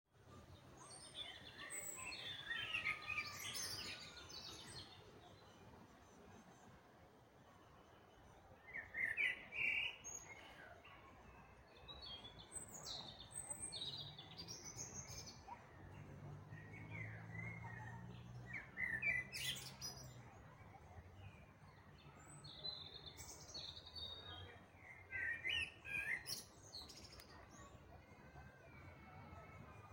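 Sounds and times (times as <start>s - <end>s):
blackbird singing: 0.3s - 6.6s, 8.6s - 11.0s, 11.8s - 20.6s, 21.2s - 27.7s.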